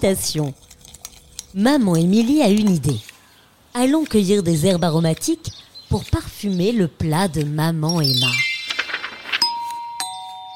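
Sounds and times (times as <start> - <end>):
speech: 0.0 - 0.7, 1.5 - 3.1, 3.7 - 8.5
quick flurry of light tinkling notes: 7.9 - 10.5
doorbell chiming a two-tone ding-dong: 9.4 - 10.5.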